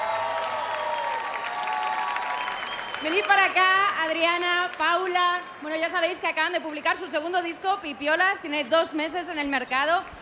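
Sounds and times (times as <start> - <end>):
audience applause for a pair of performers: 0.0 - 5.4
speech: 3.0 - 10.2.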